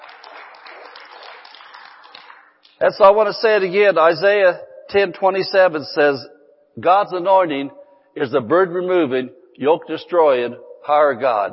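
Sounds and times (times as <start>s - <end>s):
crowd clapping in dense applause: 0.0s - 2.8s
speech: 2.8s - 11.5s.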